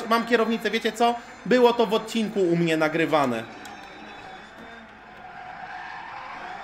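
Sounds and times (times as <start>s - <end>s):
speech: 0.1s - 3.6s
video game car tires screeching in a sideways drift: 4.3s - 6.6s.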